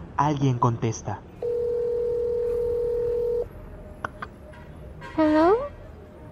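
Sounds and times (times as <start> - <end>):
speech: 0.2 - 1.3, 5.2 - 5.6
cell phone ringback tone on speakerphone: 1.4 - 3.5.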